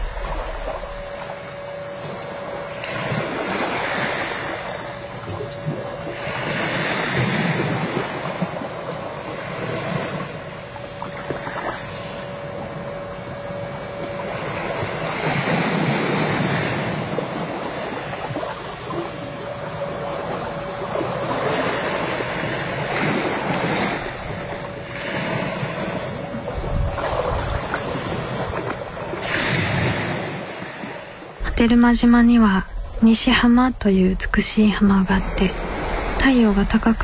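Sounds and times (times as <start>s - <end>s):
light wind rushing across the microphone: 0.0s - 1.4s, 26.2s - 30.2s, 31.4s - 37.0s
ocean waves washing onto the shore of a small island in the Yaeyama Islands: 0.0s - 37.0s
speech: 31.6s - 37.0s.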